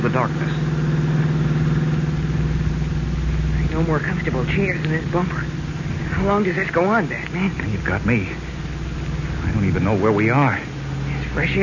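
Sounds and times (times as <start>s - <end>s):
car engine humming rolling down a steep hill on a narrow country road: 0.0s - 11.6s
speech: 0.1s - 0.8s, 3.8s - 5.6s, 6.2s - 8.5s, 9.6s - 10.7s, 11.4s - 11.6s.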